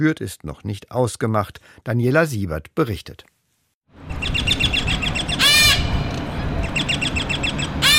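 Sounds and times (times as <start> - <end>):
speech: 0.0 - 3.4
various South American and Southeast Asian parakeet species chattering in an open-air aviary: 4.2 - 6.0, 6.6 - 7.9
harsh parakeet squawking bursts: 5.2 - 6.0, 6.8 - 7.9.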